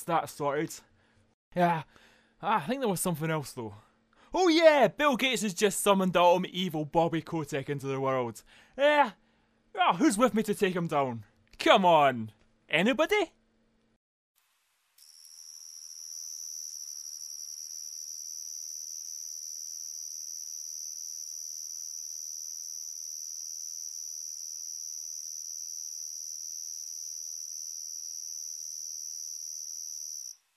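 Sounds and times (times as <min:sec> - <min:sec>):
speech: 0:00.0 - 0:00.9, 0:01.5 - 0:09.2, 0:09.8 - 0:13.4
lone cricket trilling: 0:15.0 - 0:30.4.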